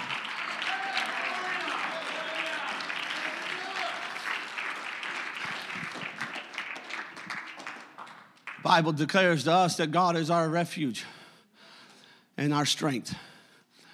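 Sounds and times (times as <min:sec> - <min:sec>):
standing audience clapping: 0:00.0 - 0:08.7
speech: 0:08.6 - 0:11.2, 0:12.4 - 0:13.3.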